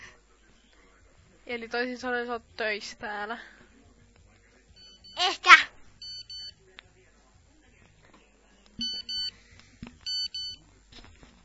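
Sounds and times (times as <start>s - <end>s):
faint murmur: 0.0s - 11.4s
speech: 1.5s - 3.6s, 5.2s - 5.6s
telephone ringing in electronic double beeps: 8.8s - 9.3s, 10.0s - 10.6s.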